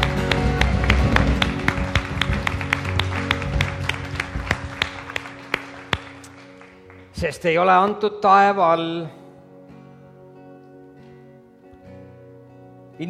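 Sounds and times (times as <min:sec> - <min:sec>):
audience applause: 0:00.0 - 0:07.2
speech: 0:07.2 - 0:09.2.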